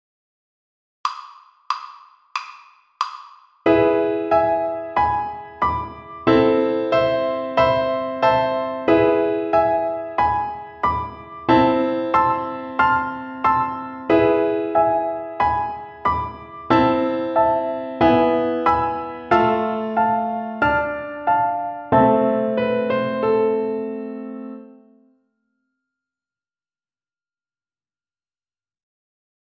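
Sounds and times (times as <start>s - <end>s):
piano accompaniment: 3.6s - 25.1s.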